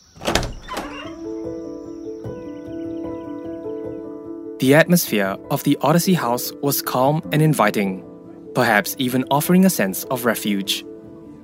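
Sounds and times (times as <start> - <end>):
door clunks: 0.0 - 1.6
speech: 4.6 - 10.9.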